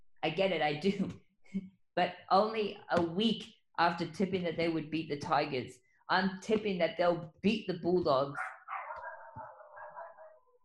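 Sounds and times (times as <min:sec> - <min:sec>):
speech: 0:00.2 - 0:08.5
dogs barking and whining: 0:08.3 - 0:10.6.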